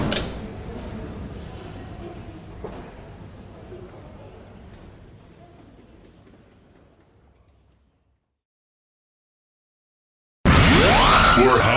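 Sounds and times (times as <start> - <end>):
door latch click: 0.0 - 0.4
loud burst: 10.5 - 11.7.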